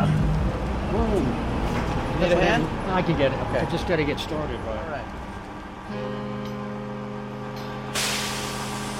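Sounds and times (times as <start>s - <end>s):
bus engine idling: 0.0s - 8.9s
speech: 2.2s - 5.2s, 5.9s - 6.4s
bus air brakes hissing: 7.9s - 8.9s.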